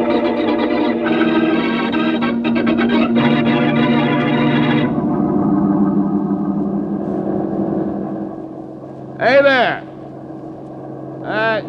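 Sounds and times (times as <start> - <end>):
bus engine rumbling as the bus approaches: 0.0 - 11.0
brief tonal burst: 1.1 - 9.2.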